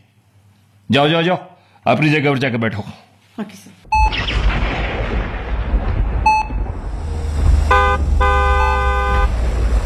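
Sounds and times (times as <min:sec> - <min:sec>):
speech: 0:00.9 - 0:03.9
low car engine rumble: 0:05.1 - 0:09.8
car horn honking: 0:07.6 - 0:09.4.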